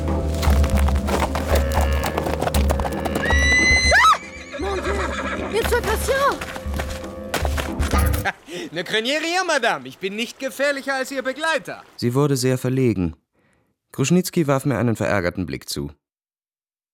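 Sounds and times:
hooves of a horse ridden out of bushes clopping: 0.3s - 4.1s, 5.3s - 8.3s
horse whinnying and neighing: 1.2s - 5.6s
speech: 8.7s - 13.2s, 13.9s - 16.0s.

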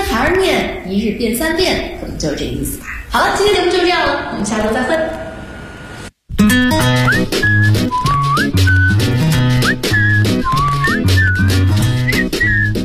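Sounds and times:
speech: 0.3s - 5.2s
instrumental backing with a steady beat: 6.3s - 12.8s
person whistling a melody: 6.8s - 12.8s.

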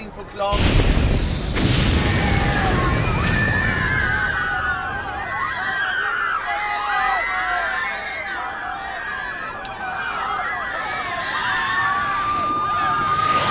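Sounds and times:
explosion set off with a detonator to blow up a clothing store: 0.5s - 5.7s
high wailing tones: 1.6s - 13.5s.

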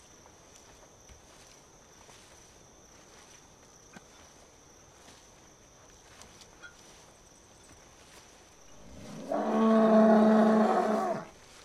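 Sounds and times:
bull mooing at night in a cemetery: 8.8s - 11.3s.

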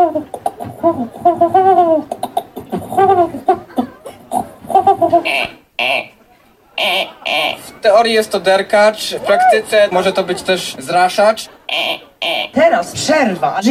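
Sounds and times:
person's voice imitating a feral city pigeon: 0.0s - 5.5s
laughter: 0.0s - 13.2s
speech: 0.2s - 2.1s, 8.0s - 13.7s.

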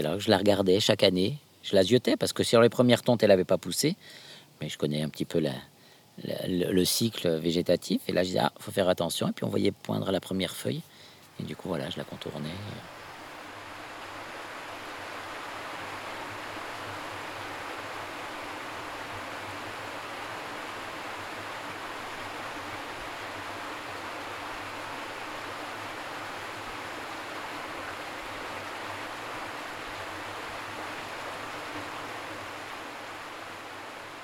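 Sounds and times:
speech: 0.0s - 12.9s
Lignon river water flowing: 10.8s - 34.2s.

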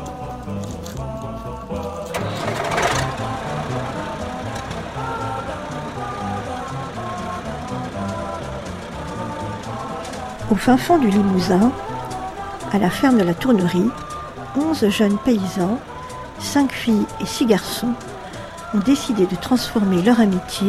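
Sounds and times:
farm tractor engine running before stubble-breaking the soil: 0.0s - 20.6s
speech: 10.5s - 11.9s, 12.7s - 18.1s, 18.7s - 20.6s.

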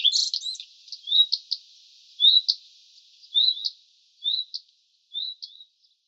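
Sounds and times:
juvenile common redstart calls: 0.0s - 1.6s, 2.2s - 2.6s, 3.2s - 5.7s.

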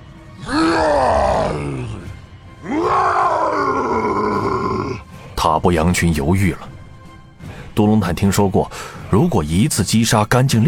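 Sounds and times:
person imitating an orc warrior's guttural roar: 0.4s - 5.1s
speech: 5.6s - 6.8s, 7.8s - 10.6s.

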